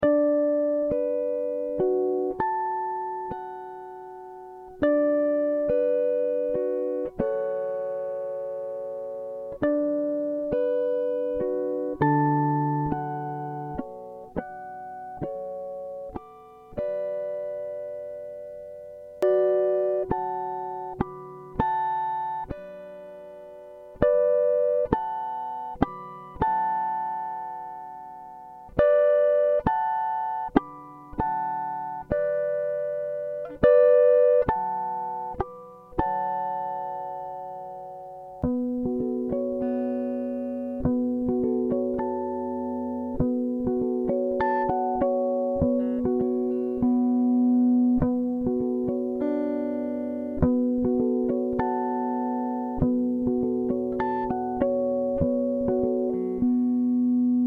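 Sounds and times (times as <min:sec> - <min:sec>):
guitar harmonics in B minor at 100 BPM: 0:00.0 - 0:57.4.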